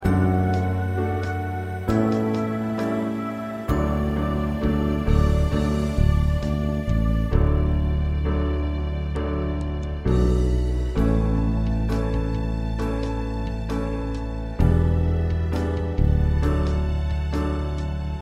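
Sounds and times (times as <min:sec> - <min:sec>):
musical accompaniment: 0:00.0 - 0:18.2.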